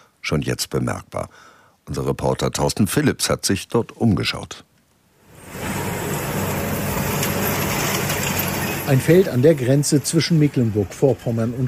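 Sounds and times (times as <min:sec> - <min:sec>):
speech: 0:00.3 - 0:04.7, 0:08.9 - 0:11.6
tractor with large rake driving through grass: 0:05.4 - 0:10.7.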